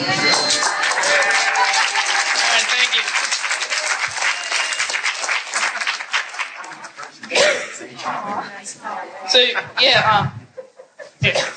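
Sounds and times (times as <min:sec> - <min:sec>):
laughter: 0:00.0 - 0:11.5
person sneezing: 0:07.3 - 0:07.8
speech: 0:09.3 - 0:10.4, 0:11.2 - 0:11.5.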